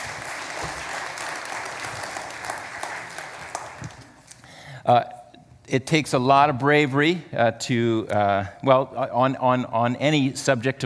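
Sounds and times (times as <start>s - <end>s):
audience applause: 0.0s - 4.2s
speech: 4.9s - 10.8s.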